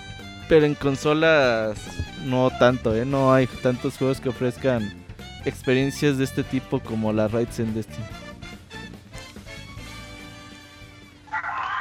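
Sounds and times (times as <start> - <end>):
speech: 0.5 - 8.2
pet dogs barking and yipping: 11.3 - 11.7.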